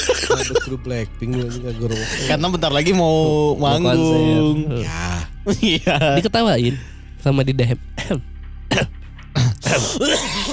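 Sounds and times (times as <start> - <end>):
person coughing harshly with throaty hacking: 0.0 - 0.8, 8.0 - 10.5
laughter: 0.0 - 2.6, 5.5 - 6.8
speech: 0.4 - 9.0, 9.7 - 10.5.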